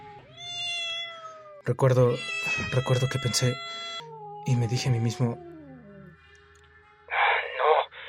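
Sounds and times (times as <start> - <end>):
cat meowing: 0.0 - 6.2
speech: 1.7 - 5.5.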